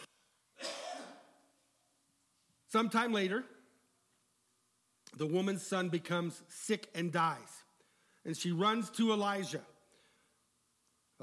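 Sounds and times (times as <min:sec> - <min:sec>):
person coughing: 0:00.6 - 0:01.4
speech: 0:02.7 - 0:03.6, 0:05.2 - 0:09.7.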